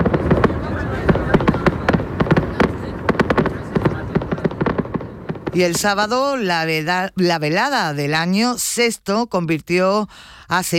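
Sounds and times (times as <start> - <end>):
fireworks display bursting in bangs and crackles: 0.0 - 7.7
speech: 5.6 - 10.7.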